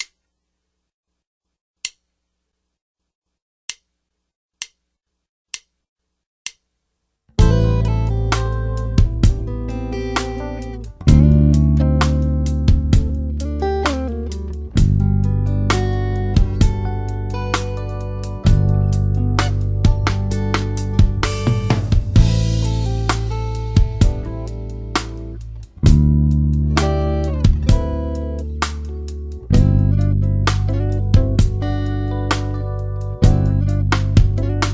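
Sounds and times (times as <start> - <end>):
song played in whole notes at 65 BPM: 7.4 - 34.7.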